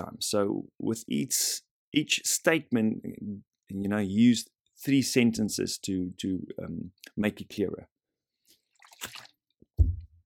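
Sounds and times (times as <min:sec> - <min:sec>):
speech: 0:00.0 - 0:07.9
speaker sipping water: 0:08.5 - 0:09.4
soft low gulp swallowing water: 0:08.8 - 0:09.4.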